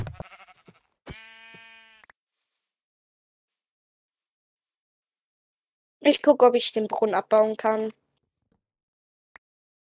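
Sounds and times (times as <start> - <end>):
sheep bleating: 0.0 - 2.1
speech: 6.0 - 8.0.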